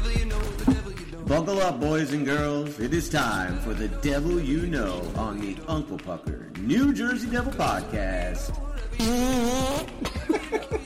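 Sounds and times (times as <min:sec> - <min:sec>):
speech: 0:00.7 - 0:10.7
loud buzzy fart sound effect used as a buzzer: 0:09.0 - 0:10.0
laughter: 0:09.6 - 0:10.8.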